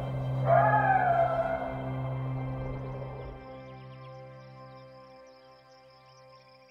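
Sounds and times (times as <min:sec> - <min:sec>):
coyotes howling: 0:00.0 - 0:03.5.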